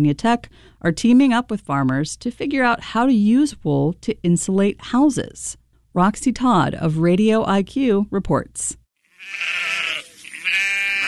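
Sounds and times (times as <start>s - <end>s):
speech: 0.0s - 10.6s
sheep bleating on a Pulaski County farm: 9.0s - 11.0s.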